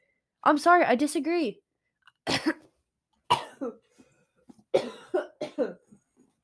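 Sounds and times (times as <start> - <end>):
speech: 0.4 - 1.6, 2.3 - 2.6
harsh coughs: 2.3 - 2.6, 3.3 - 3.8, 4.7 - 5.9.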